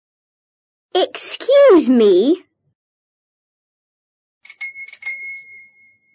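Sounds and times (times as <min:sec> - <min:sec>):
speech: 0:01.0 - 0:02.5
small bicycle bell ringing quietly: 0:04.4 - 0:06.1.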